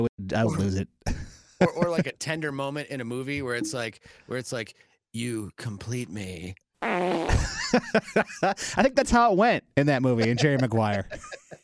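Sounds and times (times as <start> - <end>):
speech: 0.0 - 1.0, 1.6 - 11.6
laughter: 1.6 - 2.3, 7.3 - 9.0, 10.0 - 11.6
loud fart with a buzzy tonal rasp: 6.8 - 7.5.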